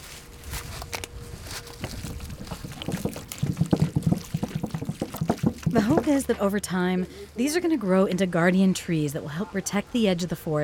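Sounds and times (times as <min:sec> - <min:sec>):
water poured onto newly planted dogwood or redbud sapling: 0:01.9 - 0:05.8
speech: 0:05.8 - 0:10.6.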